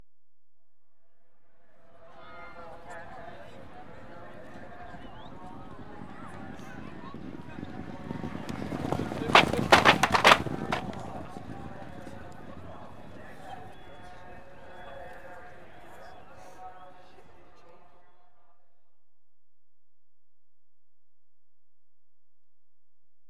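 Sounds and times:
racehorses passing: 0:04.4 - 0:13.2.

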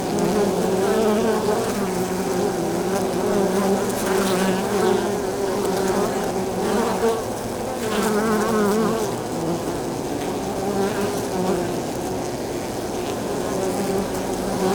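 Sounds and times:
honey bees buzzing at beehive exterior landing zone: 0:00.0 - 0:14.7.

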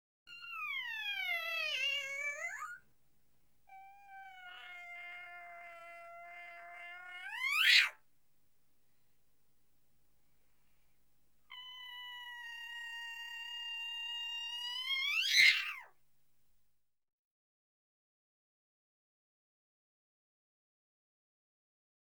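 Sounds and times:
cat: 0:00.3 - 0:02.9, 0:03.7 - 0:08.0, 0:11.5 - 0:16.0.

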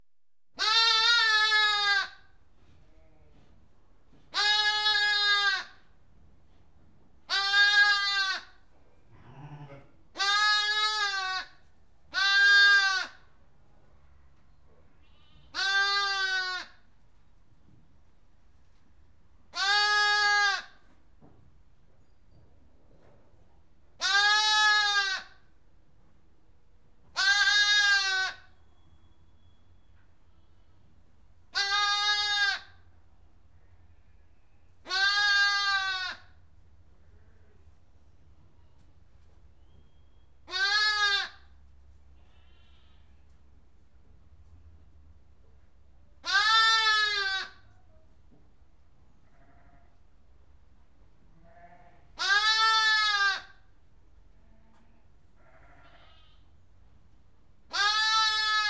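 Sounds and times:
lamb bleating in a barn: 0:00.6 - 0:02.2, 0:04.3 - 0:05.8, 0:07.3 - 0:08.6, 0:09.2 - 0:13.2, 0:15.0 - 0:16.8, 0:19.6 - 0:20.8, 0:24.0 - 0:25.4, 0:27.2 - 0:28.4, 0:31.6 - 0:32.7, 0:34.9 - 0:36.3, 0:40.5 - 0:41.4, 0:42.3 - 0:43.1, 0:46.2 - 0:47.6, 0:49.3 - 0:49.9, 0:51.4 - 0:53.6, 0:55.4 - 0:56.5, 0:57.7 - 0:58.6.

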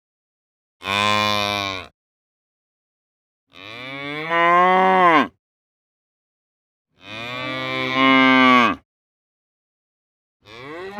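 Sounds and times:
cow mooing: 0:00.8 - 0:01.9, 0:03.6 - 0:05.4, 0:07.0 - 0:08.8, 0:10.5 - 0:10.9.

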